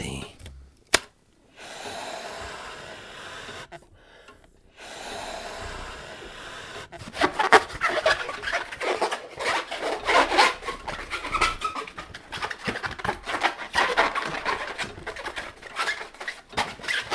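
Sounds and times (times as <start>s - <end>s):
balloon rubber squeaking and stretching as it is twisted into a giraffe: 7.0s - 17.1s.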